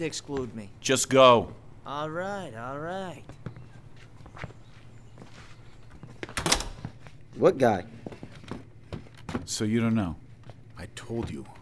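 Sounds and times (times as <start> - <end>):
speech: 0.0 - 3.4, 4.4 - 4.6, 7.4 - 8.1, 9.5 - 10.2, 10.8 - 11.5
soft footsteps shuffling: 0.0 - 11.5
door pushed shut with a thud and rattle: 6.2 - 7.0.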